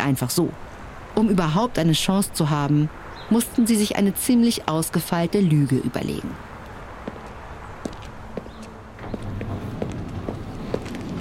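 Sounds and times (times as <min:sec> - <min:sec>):
speech: 0:00.0 - 0:06.5
footsteps of two men walking through department store halls: 0:06.6 - 0:11.2.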